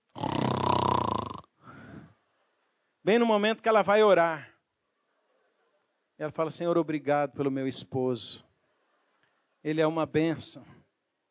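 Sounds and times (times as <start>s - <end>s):
voice imitating a man's snoring: 0.0s - 1.5s
speech: 3.1s - 4.5s, 6.2s - 8.4s, 9.6s - 10.8s.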